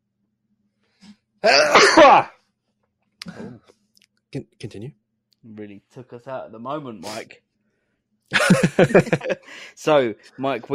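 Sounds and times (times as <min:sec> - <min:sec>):
person sneezing: 0:01.4 - 0:02.3
speech: 0:01.4 - 0:02.3, 0:04.3 - 0:07.5, 0:08.3 - 0:10.7
laughter: 0:08.3 - 0:09.7.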